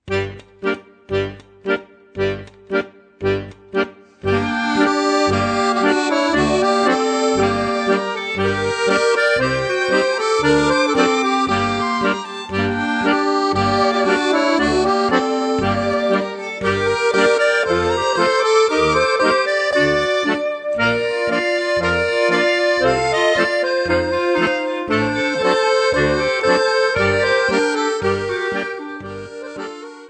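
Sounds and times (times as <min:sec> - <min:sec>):
Armenian accordion: 0:00.0 - 0:30.0.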